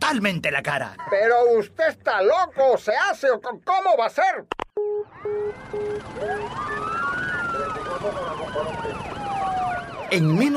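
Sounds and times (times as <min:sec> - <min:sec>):
speech: 0:00.1 - 0:04.9, 0:05.7 - 0:06.8, 0:10.1 - 0:10.5
police car sirens wailing: 0:04.8 - 0:10.5
police vehicle engine rumble: 0:05.0 - 0:10.1.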